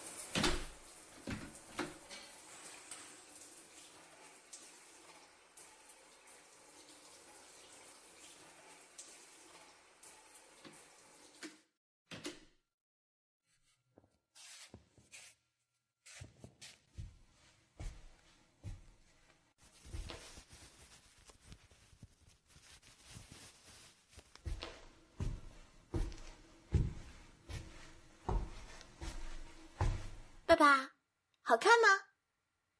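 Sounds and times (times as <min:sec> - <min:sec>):
water running and splashing as a girl bathes and washes her hair: 0:00.0 - 0:11.7, 0:19.6 - 0:30.5
door shutting with a thud: 0:00.3 - 0:02.0
speech: 0:30.5 - 0:30.9, 0:31.5 - 0:32.0.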